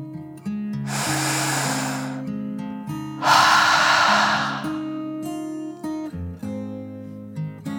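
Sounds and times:
deep breath in and out: 0.9s - 2.4s, 3.2s - 5.0s.

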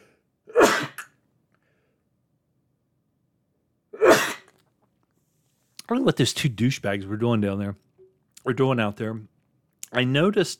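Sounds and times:
person sneezing: 0.5s - 1.1s, 4.0s - 4.7s
speech: 5.9s - 9.3s, 9.9s - 10.5s.

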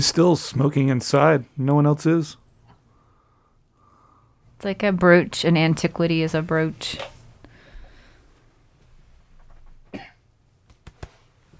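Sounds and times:
speech: 0.0s - 2.4s, 4.6s - 7.2s
low hiss: 0.0s - 11.5s
throat clearing: 9.9s - 10.2s.

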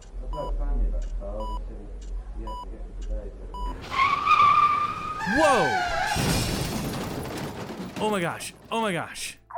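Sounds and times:
short beeps: 0.4s - 0.6s, 1.4s - 1.7s
car tires squealing as a car swerves off the road: 3.8s - 6.5s
speech: 5.3s - 6.6s, 8.0s - 9.4s.

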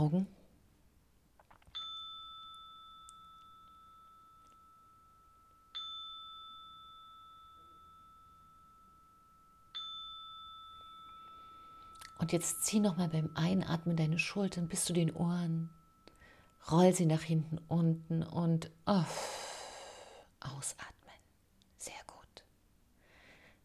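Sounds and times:
speech: 0.0s - 0.4s, 12.2s - 15.8s, 16.6s - 19.4s, 20.4s - 21.0s
meditation chime ringing: 1.7s - 20.0s.

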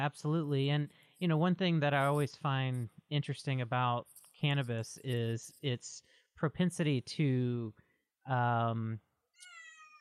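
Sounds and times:
speech: 0.0s - 9.1s
cat meowing: 9.4s - 9.9s.

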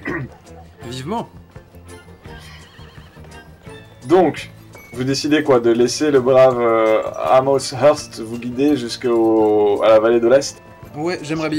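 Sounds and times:
speech: 0.2s - 1.4s, 4.0s - 11.5s
hoof clops: 0.6s - 11.4s
horse neighing: 2.0s - 4.5s, 6.4s - 7.3s.

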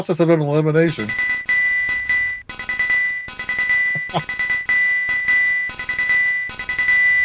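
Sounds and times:
speech: 0.0s - 1.3s
coral triangle ringing: 0.9s - 7.2s.

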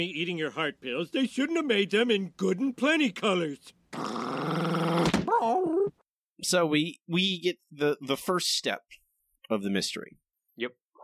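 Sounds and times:
speech: 0.0s - 4.3s, 6.4s - 11.0s
dog snarling and growling aggressively: 4.0s - 5.2s.

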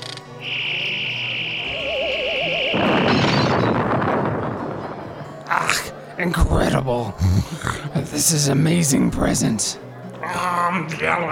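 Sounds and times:
wavering warble: 0.4s - 4.1s
steady high whine: 0.4s - 4.6s
loud broad noisy burst of a shot blasting a rock: 0.4s - 5.3s
speech: 6.2s - 9.9s, 10.7s - 11.2s.

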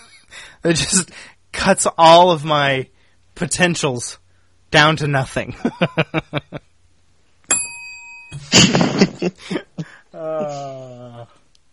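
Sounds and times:
speech: 0.6s - 6.7s, 8.3s - 11.4s
bright bell strike: 7.5s - 8.4s.

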